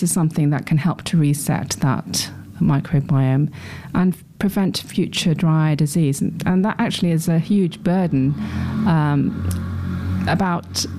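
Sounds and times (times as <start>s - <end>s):
speech: 0.0s - 9.7s, 10.3s - 10.9s
loud motorbike roaring past: 7.4s - 10.9s.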